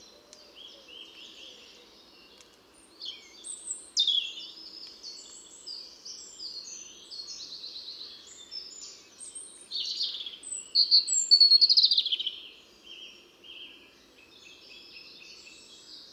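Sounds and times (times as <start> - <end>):
European robin Erithacus rubecula singing jangling twittering notes: 0.0 - 16.0.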